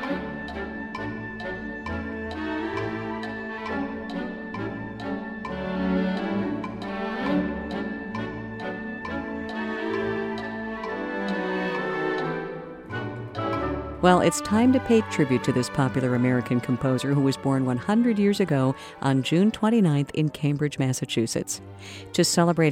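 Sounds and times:
orchestral woodblocks ticking like a clock: 0:00.0 - 0:13.6
full orchestral music with lively strings and winds: 0:00.0 - 0:22.6
speech: 0:14.0 - 0:22.6.

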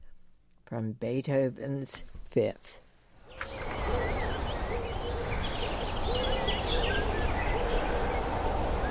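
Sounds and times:
speech: 0:00.7 - 0:02.8, 0:03.4 - 0:04.9
Yellowhammer singing: 0:03.1 - 0:08.8.

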